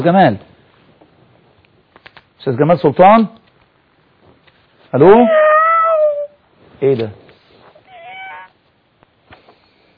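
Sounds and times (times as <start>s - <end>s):
speech: 0.0s - 0.5s, 2.4s - 3.4s, 4.9s - 5.5s, 6.8s - 7.2s
cat meowing over a telephone line: 5.0s - 6.3s, 7.8s - 8.5s.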